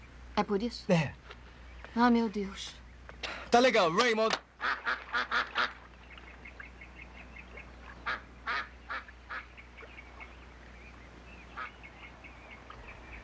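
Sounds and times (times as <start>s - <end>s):
low hum: 0.0s - 13.2s
speech: 0.4s - 1.3s, 2.0s - 2.8s, 3.5s - 5.0s
ducks quacking: 4.6s - 13.2s.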